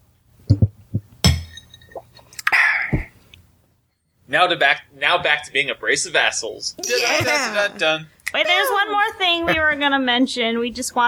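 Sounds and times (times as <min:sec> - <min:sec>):
soft knocks and thumps: 0:00.5 - 0:02.0, 0:02.9 - 0:03.2
glasses clinking together in a toast: 0:01.2 - 0:02.2
speech: 0:04.3 - 0:11.0.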